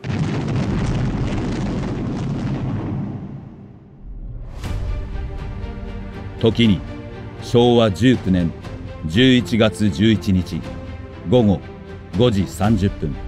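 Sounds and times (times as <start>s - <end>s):
huge explosion of a sinking Japanese Navy destroyer in Ormoc Bay: 0.0s - 4.9s
speech: 6.4s - 13.2s.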